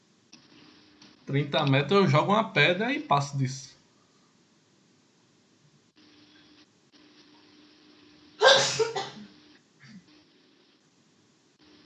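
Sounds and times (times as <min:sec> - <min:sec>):
low steady hum: 0:00.0 - 0:11.8
speech: 0:01.3 - 0:03.8
loud sneeze: 0:08.4 - 0:09.2.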